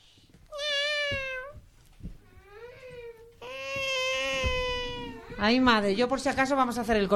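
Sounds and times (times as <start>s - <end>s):
cat meowing: 0.5s - 1.6s, 2.2s - 5.7s
speech: 5.4s - 7.1s.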